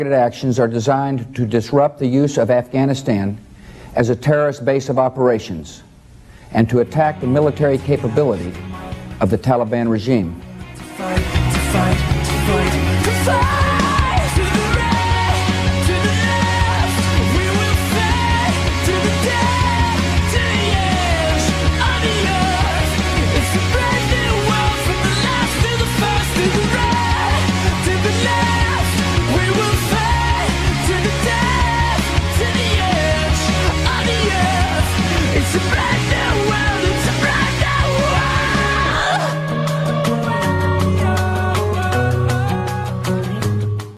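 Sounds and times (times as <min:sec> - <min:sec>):
speech: 0:00.0 - 0:05.9, 0:06.5 - 0:10.4, 0:11.0 - 0:13.6
heavy guitars: 0:10.4 - 0:43.9
loud dense rock song with shouted vocals: 0:10.7 - 0:43.7.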